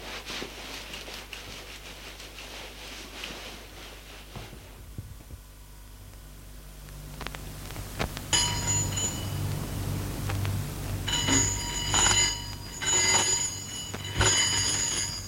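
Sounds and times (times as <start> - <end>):
low steady hum: 0.0 - 15.2
apartment intercom buzzer ringing: 8.3 - 15.2.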